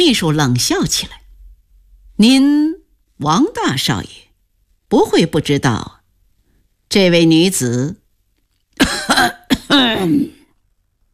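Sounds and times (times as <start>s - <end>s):
speech: 0.0s - 1.2s, 2.2s - 4.2s, 4.9s - 6.0s, 6.9s - 8.0s, 8.8s - 10.4s
man clearing his throat: 8.8s - 10.4s
man coughing: 8.8s - 10.4s.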